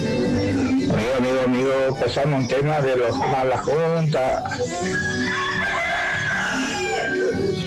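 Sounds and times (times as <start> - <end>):
busy noisy background: 0.0 - 7.6
speech: 1.4 - 5.5
rooster crowing: 4.7 - 7.6.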